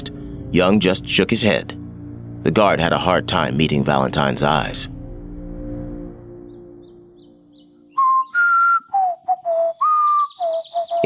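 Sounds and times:
low droning hum: 0.0 - 7.2
speech: 0.5 - 1.8, 2.4 - 5.0
man whistling a short tune in a prison yard: 8.0 - 11.0.

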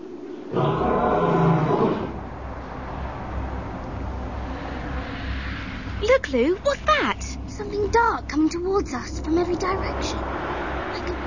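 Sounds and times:
low rumbling noise: 0.0 - 11.2
lion roaring: 0.5 - 3.6
speech: 6.3 - 10.6.

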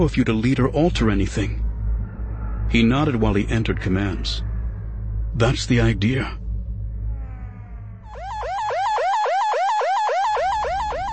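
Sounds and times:
speech: 0.0 - 1.6, 2.7 - 4.5, 5.4 - 6.4
low rumble: 0.0 - 8.9
siren wailing: 0.8 - 11.1.

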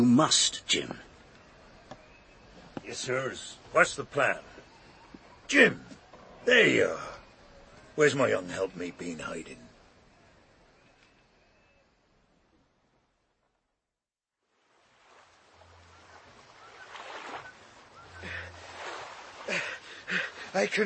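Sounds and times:
speech: 0.0 - 1.0, 2.9 - 4.5, 5.5 - 7.1, 8.0 - 9.6, 19.5 - 20.8
soft wash of waves: 14.5 - 20.8
oars of a rowing boat splashing through water: 14.6 - 20.8.

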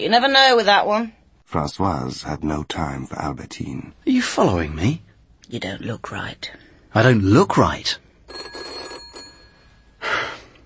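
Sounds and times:
speech: 0.0 - 8.8
telephone bell ringing: 8.3 - 10.0.

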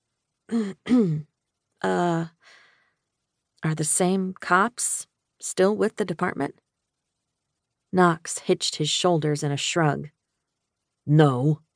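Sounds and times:
throat clearing: 0.5 - 1.3
speech: 0.5 - 2.6, 3.6 - 6.6, 7.9 - 10.2, 11.1 - 11.6.

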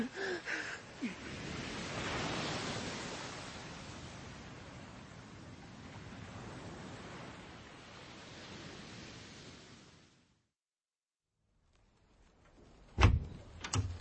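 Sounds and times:
ocean surf waves breaking: 0.0 - 10.3.

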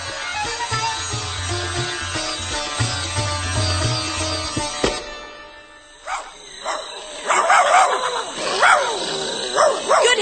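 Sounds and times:
droning music: 0.0 - 10.2
pack of wild dogs yipping and barking in the jungle: 6.0 - 10.2.

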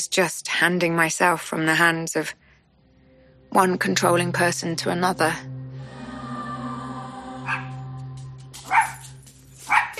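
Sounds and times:
speech: 0.0 - 2.4, 3.5 - 5.5
dog barking: 7.4 - 7.8, 8.6 - 9.9.

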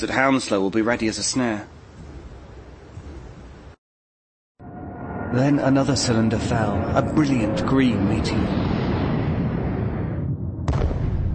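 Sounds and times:
speech: 0.0 - 1.8, 5.3 - 8.7
distant cannon fire in a fitful cannonade: 8.6 - 11.3.

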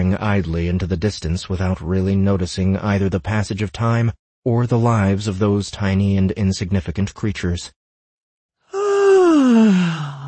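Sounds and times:
speech: 0.1 - 7.8, 9.4 - 10.0
woman yawning loudly: 8.7 - 10.2.

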